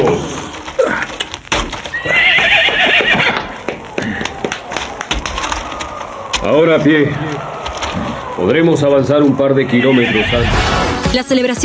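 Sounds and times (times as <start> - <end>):
horse hooves clip-clopping: 0.0 - 10.4
worn-out horses whinnying: 0.0 - 10.8
speech: 6.6 - 7.3, 8.4 - 11.6.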